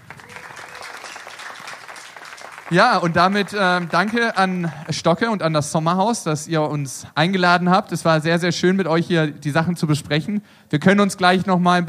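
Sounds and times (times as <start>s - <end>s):
audience applauding for children: 0.0s - 5.6s
speech: 2.7s - 11.8s.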